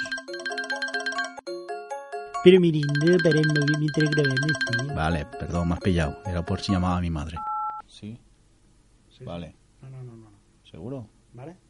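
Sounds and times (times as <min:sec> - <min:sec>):
mobile phone ringing with a repeating electronic melody: 0:00.0 - 0:07.8
speech: 0:02.4 - 0:08.2, 0:09.2 - 0:11.6.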